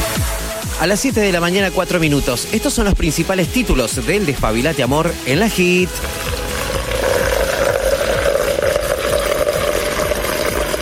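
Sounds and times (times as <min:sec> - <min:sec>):
speech: 0:00.8 - 0:06.4
long steady stream of water poured for mate: 0:05.2 - 0:10.8.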